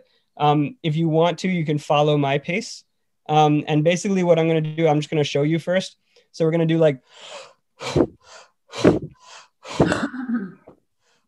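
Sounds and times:
speech: 0.4s - 10.6s
deep hyperventilating breaths with forceful exhales: 7.0s - 10.0s.

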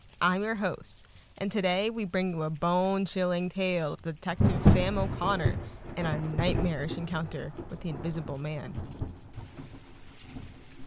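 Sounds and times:
steady rainfall hissing: 0.0s - 10.8s
speech: 0.2s - 9.0s
low thunder rumbling: 4.3s - 10.8s.

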